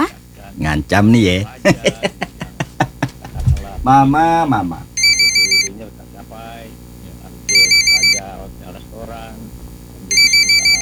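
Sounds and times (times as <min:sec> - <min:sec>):
speech: 0:00.6 - 0:02.2, 0:03.9 - 0:04.9
laughter: 0:01.5 - 0:04.1, 0:05.8 - 0:06.6, 0:08.3 - 0:09.4
telephone ringing in trilling bursts: 0:05.0 - 0:05.8, 0:07.5 - 0:08.3, 0:10.1 - 0:10.8.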